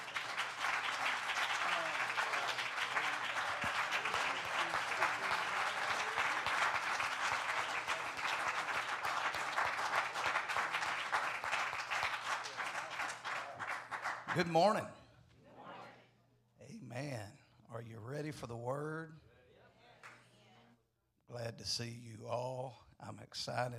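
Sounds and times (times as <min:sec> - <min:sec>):
audience applauding with dense hand clapping: 0:00.0 - 0:14.8
speech: 0:14.4 - 0:15.0, 0:18.1 - 0:19.2, 0:21.4 - 0:23.7.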